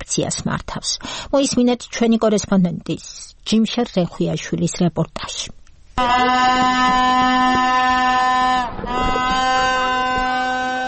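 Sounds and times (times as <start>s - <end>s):
speech: 0.2s - 9.5s
horns blown by protesters outside a government chancellery building: 6.0s - 10.8s.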